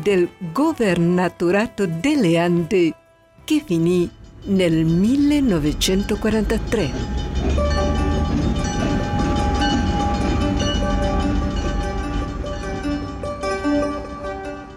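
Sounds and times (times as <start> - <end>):
speech: 0.0 - 7.2
train rolling along rails with heavy rumble: 3.5 - 14.7
sustained metallic whining tones of a train: 3.6 - 14.7.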